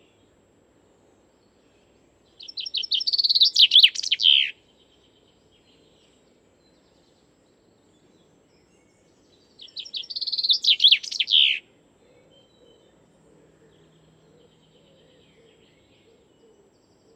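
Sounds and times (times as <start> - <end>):
common chaffinch singing a rattling descending trill: 2.4 - 5.1, 9.4 - 11.7.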